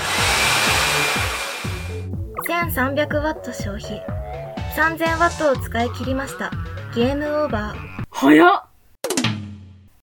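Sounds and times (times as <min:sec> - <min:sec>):
hair dryer blowing after a shower: 0:00.0 - 0:02.1
speech: 0:02.6 - 0:04.2, 0:04.8 - 0:08.7.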